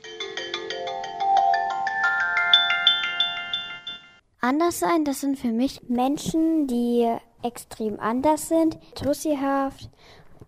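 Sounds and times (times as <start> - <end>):
mobile phone ringtone with chiming notes: 0.0 - 4.2
speech: 4.4 - 10.2.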